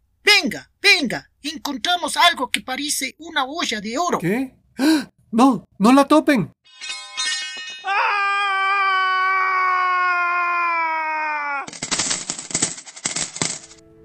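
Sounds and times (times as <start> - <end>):
speech: 0.4 - 6.6
man screaming in fright at a building renovation site: 7.8 - 11.7
man crying out at a building renovation site: 7.8 - 11.8
harsh clattering noise at a building renovation site: 11.7 - 13.8.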